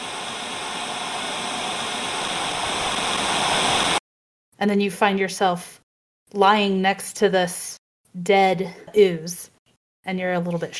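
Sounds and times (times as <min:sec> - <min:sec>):
roaring broadband static noise: 0:00.0 - 0:04.0
speech: 0:04.6 - 0:10.7.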